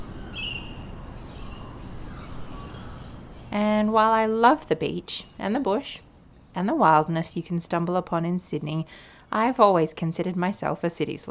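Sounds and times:
birds calling in a leafy suburb of Sydney: 0.0 - 6.6
speech: 3.5 - 11.2.

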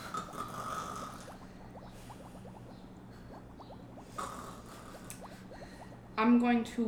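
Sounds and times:
voice imitating snoring: 0.0 - 1.4, 4.1 - 5.3
speech: 6.2 - 6.8.

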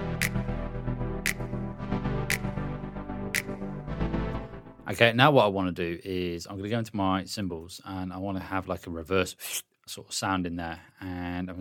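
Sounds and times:
music intro of sustained layered chords: 0.0 - 4.9
crisp finger snaps: 0.2 - 0.5, 1.3 - 1.6, 2.3 - 2.6, 3.4 - 3.7
speech: 4.9 - 11.5.

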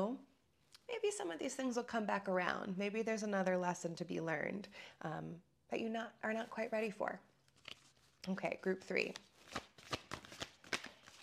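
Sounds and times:
speech: 0.0 - 0.3, 0.9 - 7.3, 8.2 - 9.7
tarot cards being shuffled: 7.4 - 11.2.

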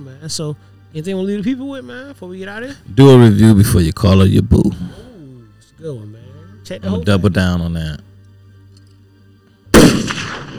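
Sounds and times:
speech: 0.0 - 5.0, 5.8 - 8.1
gunshot blast: 9.7 - 10.5.

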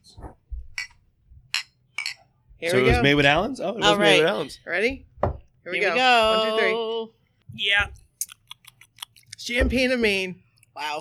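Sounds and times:
glasses clinking in a toast: 0.8 - 4.4
speech: 2.6 - 8.0, 9.5 - 11.0.

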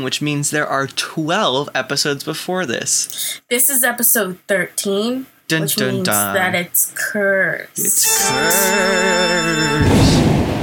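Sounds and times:
speech: 0.0 - 10.3
wavering sustained tone: 7.8 - 10.2
thunder sound effect: 9.8 - 10.6.

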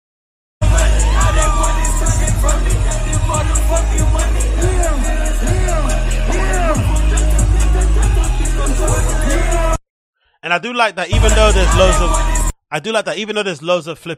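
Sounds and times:
concert crowd cheering: 0.6 - 9.7, 11.2 - 12.5
concert audience shouts and screams: 0.6 - 9.8, 11.2 - 12.6
speech: 10.4 - 14.1.

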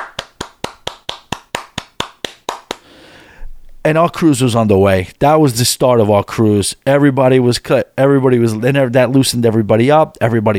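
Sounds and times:
hands clapping along to a dance song: 0.0 - 2.9
speech: 3.8 - 10.5.

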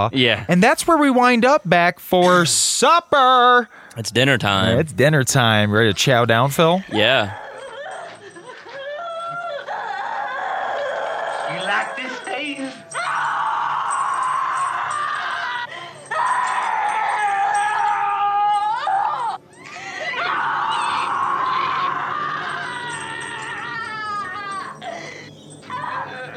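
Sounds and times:
speech: 0.0 - 7.5
woman screaming in terror in film scene: 7.3 - 26.3.

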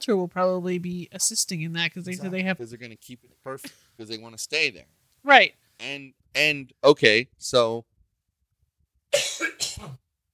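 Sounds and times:
speech: 0.0 - 7.9, 9.1 - 10.0
raspy cough: 9.1 - 10.0.

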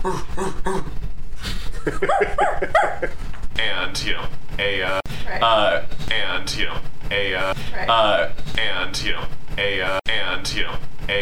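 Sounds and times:
speech: 0.0 - 0.9, 1.9 - 10.0
laughter: 1.6 - 3.3
dog yelping: 2.0 - 3.2.

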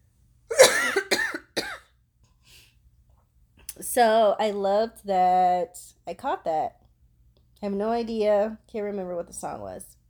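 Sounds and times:
raspy coughs: 0.5 - 1.9
speech: 3.8 - 6.8, 7.6 - 10.0.

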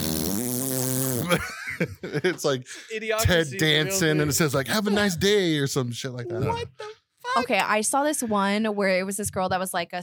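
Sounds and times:
voice making a buzzing lip fart noise: 0.0 - 1.4
laughter: 1.2 - 7.4
speech: 1.3 - 10.0.

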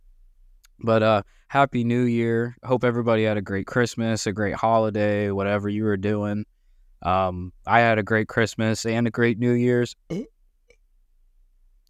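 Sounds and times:
speech: 0.8 - 10.3
short low throaty burp: 10.1 - 10.3.

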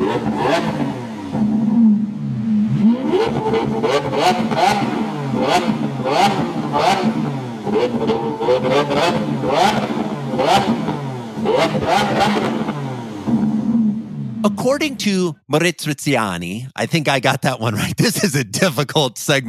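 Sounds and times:
high-pitched Lamborghini supercar engine roaring and revving: 0.0 - 14.6
supercar engine crackling bursts: 0.0 - 14.9
speech: 3.5 - 12.7, 14.4 - 19.4
laughter: 16.8 - 19.4.

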